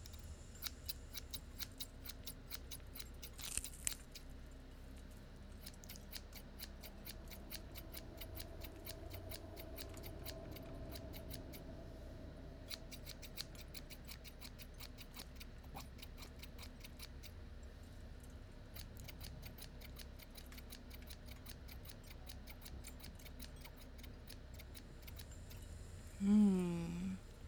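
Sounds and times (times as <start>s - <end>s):
low hum: 0.0s - 27.4s
scissors snipping: 0.6s - 4.3s, 5.6s - 11.6s, 12.7s - 17.4s, 18.7s - 25.3s.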